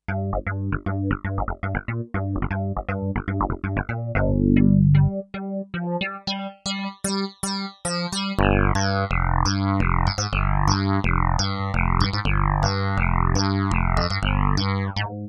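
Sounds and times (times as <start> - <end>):
synthesizer factory preset rave rhythm: 0.1 - 15.0.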